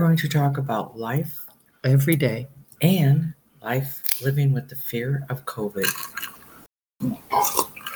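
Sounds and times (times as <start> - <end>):
speech: 0.0 - 6.3, 7.0 - 7.6
person slurping a brandy old fashioned cocktail: 5.8 - 7.9.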